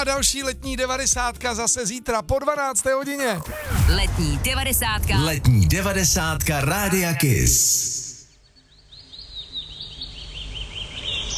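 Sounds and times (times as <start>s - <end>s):
speech: 0.0s - 8.0s
birds chirping: 6.2s - 11.3s.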